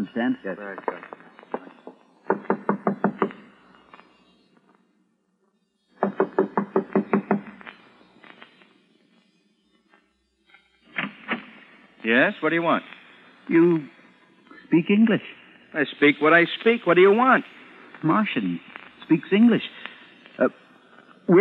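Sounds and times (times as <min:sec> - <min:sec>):
speech: 0:00.0 - 0:01.2, 0:12.1 - 0:14.0, 0:14.7 - 0:19.8, 0:20.4 - 0:20.6
firm knocking on a door: 0:02.3 - 0:03.4, 0:06.0 - 0:07.5.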